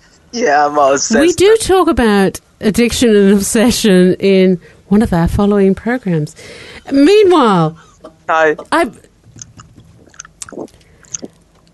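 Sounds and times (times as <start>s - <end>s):
speech: 0.3s - 9.0s, 10.5s - 10.8s
wet chewing at the microphone: 9.3s - 11.7s.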